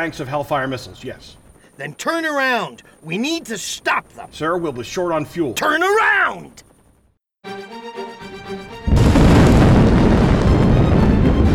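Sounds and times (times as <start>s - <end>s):
speech: 0.0s - 6.7s
building collapsing: 8.9s - 11.5s.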